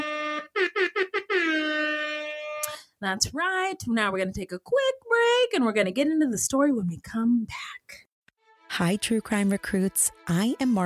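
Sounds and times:
hip hop air horn sound effect: 0.0 - 2.7
speech: 3.0 - 8.0, 8.8 - 10.8.

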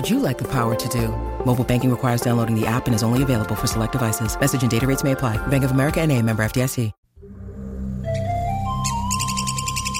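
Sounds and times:
speech: 0.0 - 7.0
red-cockaded woodpecker chirping: 8.8 - 9.9.

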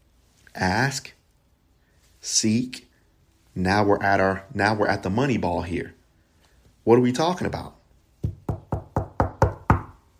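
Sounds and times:
speech: 0.6 - 1.2, 2.2 - 2.9, 3.6 - 6.0, 6.8 - 8.4
knocking on a wooden surface: 8.2 - 10.0.

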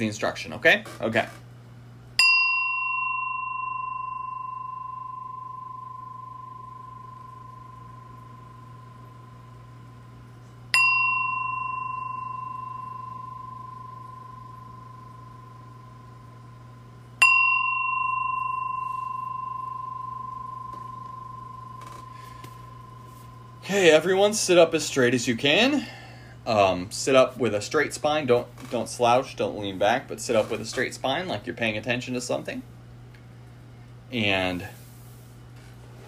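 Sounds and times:
speech: 0.0 - 1.4, 24.0 - 32.7, 34.1 - 34.8
bell ringing: 2.2 - 9.4, 10.7 - 16.3, 17.2 - 24.6.

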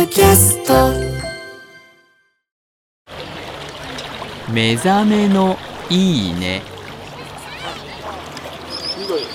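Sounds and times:
speech: 0.1 - 1.1, 4.5 - 6.7
river water flowing and lapping around a cormorant fishing boat: 3.1 - 9.3
high chirping calls: 8.6 - 9.3.

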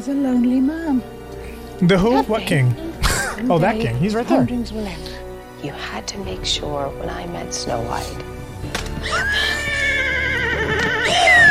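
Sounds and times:
speech: 0.0 - 1.2, 1.8 - 2.8, 3.4 - 9.5
horse neighing: 9.0 - 11.4.

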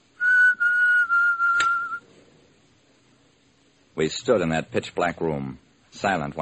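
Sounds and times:
person whistling one steady high note: 0.2 - 2.0
sharp click: 1.5 - 1.8
speech: 4.0 - 6.4.

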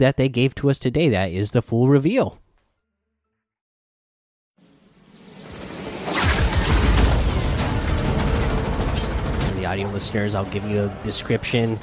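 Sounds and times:
speech: 0.0 - 2.4, 9.7 - 11.8
grenade landing and exploding in a video game trailer: 5.2 - 10.0.

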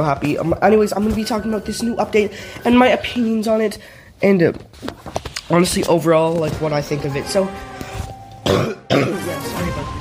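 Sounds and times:
speech: 0.0 - 7.7, 8.4 - 9.8
person coughing: 8.4 - 9.4.

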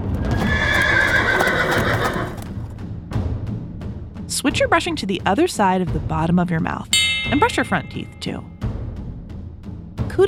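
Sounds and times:
horse hooves clip-clopping: 0.2 - 2.7
speech: 4.5 - 8.6.

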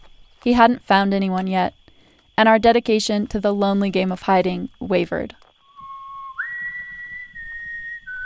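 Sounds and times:
speech: 0.4 - 1.8, 2.4 - 5.4
person whistling a short melodic refrain from a musical in a barn: 5.7 - 8.2.

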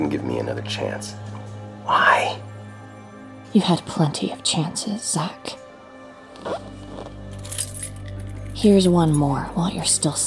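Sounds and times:
speech: 0.0 - 2.5, 3.5 - 5.6, 6.4 - 6.7, 8.6 - 10.2
metallic jingle of keys being handed over: 7.3 - 10.1.

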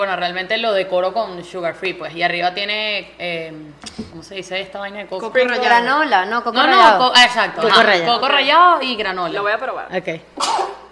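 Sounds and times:
speech: 0.0 - 10.6
person sneezing: 3.8 - 4.2, 10.4 - 10.8.

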